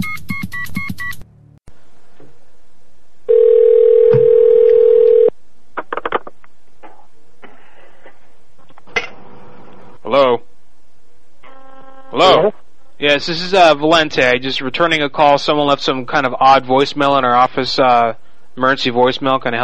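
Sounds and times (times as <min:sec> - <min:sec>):
telephone dial tone while calling back: 0:03.3 - 0:05.3
speech: 0:12.2 - 0:19.6.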